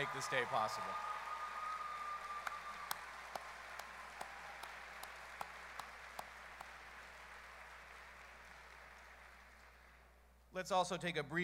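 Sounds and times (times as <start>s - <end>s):
speech: 0.0s - 1.2s, 10.5s - 11.4s
crowd of graduates applauding: 0.0s - 10.2s.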